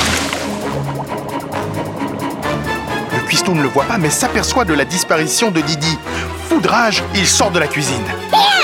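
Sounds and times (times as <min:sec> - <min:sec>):
splash into a pot of boiling water with noodles: 0:00.0 - 0:01.0
water sloshing and bubbling in a pot of boiling water with noodles: 0:00.0 - 0:04.5
speech: 0:03.5 - 0:08.5.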